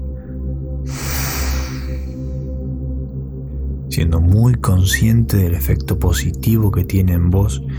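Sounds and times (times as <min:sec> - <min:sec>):
steady low humming musical drone: 0:00.0 - 0:07.7
slow deep exhalation during a guided relaxation breathing exercise: 0:00.9 - 0:02.3
speech: 0:04.0 - 0:07.7.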